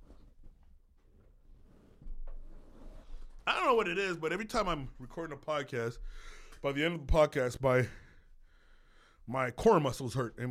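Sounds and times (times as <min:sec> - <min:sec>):
office chair creaking while being adjusted: 0:01.0 - 0:03.5
speech: 0:03.7 - 0:08.0, 0:09.3 - 0:10.4.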